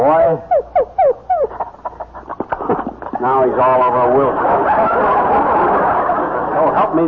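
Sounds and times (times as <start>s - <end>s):
speech: 0.0s - 0.8s, 3.2s - 5.9s, 6.6s - 7.0s
dog whimpering: 0.3s - 1.9s
laughter: 0.5s - 7.0s.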